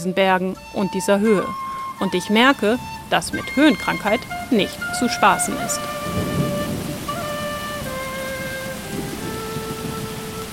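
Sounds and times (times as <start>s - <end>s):
speech: 0.0s - 6.4s
steady rain in a thunderstorm: 0.0s - 10.5s
sustained droning tones: 0.0s - 10.5s
low rolling rumble of thunder: 4.2s - 10.5s.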